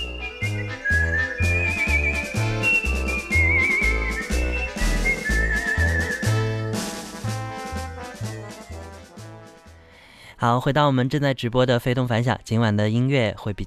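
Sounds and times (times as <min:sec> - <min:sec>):
bright whistled march melody: 0:00.0 - 0:09.1
marching band accompaniment with firm regular bass beats: 0:00.0 - 0:09.9
speech: 0:10.4 - 0:13.6.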